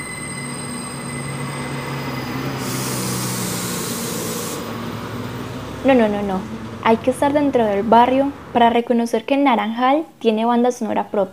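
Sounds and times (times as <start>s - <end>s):
sustained metallic screech of metro train wheels: 0.0s - 8.5s
metro train rumbling along the tracks in the Naranjal neighborhood: 0.0s - 8.6s
speech: 5.8s - 11.3s.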